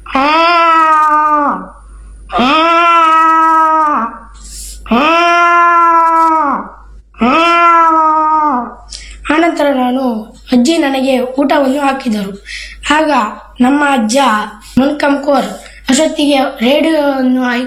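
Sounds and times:
person imitating a cat with wailing meows: 0.0 - 1.7, 2.3 - 4.2, 4.9 - 8.8
speech: 10.7 - 17.6.

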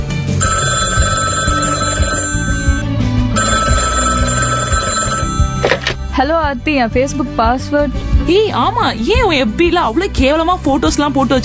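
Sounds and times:
phone electronic ringback tone on an outgoing call: 0.4 - 6.0
speech: 6.2 - 11.4.

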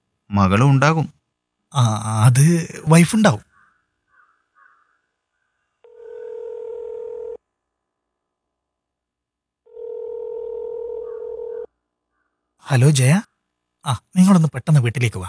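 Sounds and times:
speech: 0.3 - 3.5, 12.7 - 15.2
telephone ringback tone on an outgoing call: 5.9 - 7.4, 9.7 - 11.7.

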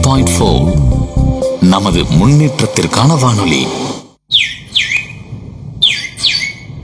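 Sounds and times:
speech: 0.1 - 1.0, 1.7 - 4.6
sparrow chirping: 4.3 - 6.8.

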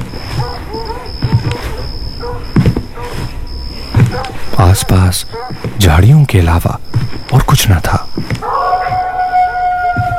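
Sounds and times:
several jackals howling in a forest around a deserted road at night: 0.0 - 3.2, 4.0 - 5.6, 8.4 - 10.1
speech: 4.6 - 8.6.

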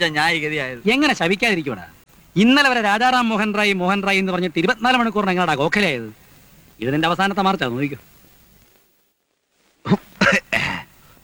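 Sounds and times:
speech: 0.0 - 6.2, 6.8 - 8.1, 9.8 - 10.4
person coughing: 9.9 - 11.1.

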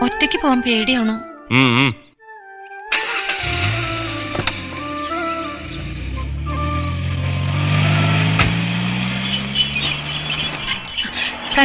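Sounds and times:
speech: 0.0 - 2.0
vehicle engine running: 3.4 - 11.6.

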